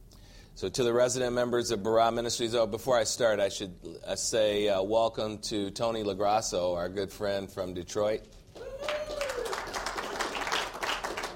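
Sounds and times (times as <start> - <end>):
speech: 0.6 - 8.4
church audience clapping: 8.5 - 11.3.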